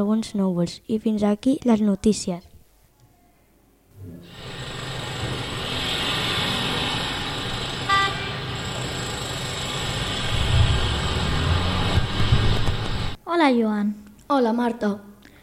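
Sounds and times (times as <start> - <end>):
speech: 0.0 - 2.5, 13.3 - 15.1
car engine turning over, starting and running: 4.3 - 13.2
short car horn toot: 7.8 - 8.6.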